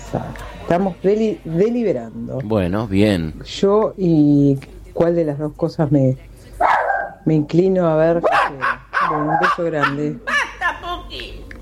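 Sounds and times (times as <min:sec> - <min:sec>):
speech: 0:00.1 - 0:10.3
small dog yapping: 0:08.2 - 0:10.5.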